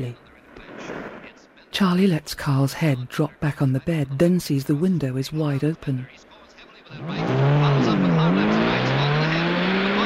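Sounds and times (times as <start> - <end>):
speech: 0.0 - 0.3, 1.8 - 6.3, 6.9 - 8.2
car engine roaring: 6.8 - 10.0
car tires squealing: 7.0 - 10.0.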